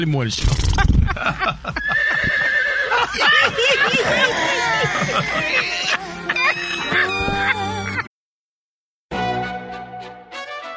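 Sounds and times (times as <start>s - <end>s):
speech: 0.0s - 2.4s, 3.1s - 6.1s
laughter: 0.9s - 8.1s
horse neighing and whinnying loudly: 1.8s - 2.9s.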